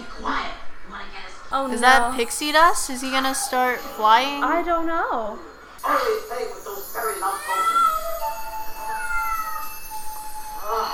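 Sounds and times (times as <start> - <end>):
speech: 1.6 - 7.9
cat meowing in drawn-out wavering cries: 7.2 - 10.0.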